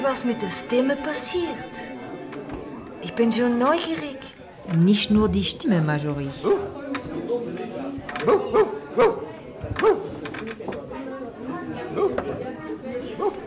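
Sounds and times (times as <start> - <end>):
speech: 0.0 - 9.2
indistinct voices chattering: 0.0 - 13.4
dog barking: 6.4 - 6.7, 8.2 - 10.1, 11.9 - 12.3, 13.2 - 13.4.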